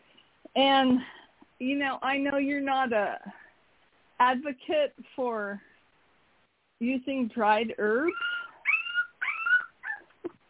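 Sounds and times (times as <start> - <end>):
speech: 0.6 - 3.4, 4.2 - 5.7, 6.8 - 8.3
puppy whimpering and crying: 8.1 - 10.3.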